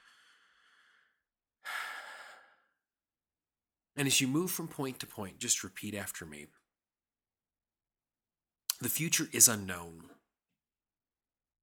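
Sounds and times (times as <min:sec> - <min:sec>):
person taking a deep breath: 0:00.0 - 0:02.9
speech: 0:04.0 - 0:06.6, 0:08.8 - 0:10.2.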